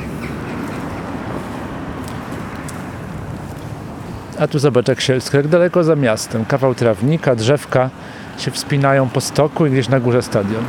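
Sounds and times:
bird-like chirps: 0.0s - 4.4s
low rumble of trains at a train station: 0.0s - 5.3s
low rumble of city traffic: 0.0s - 10.6s
speech: 4.4s - 10.6s.

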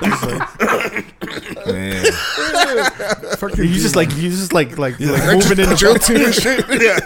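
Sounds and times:
person coughing throatily: 0.0s - 2.5s, 6.2s - 7.0s
laughter: 1.6s - 7.0s
speech: 2.0s - 7.0s.

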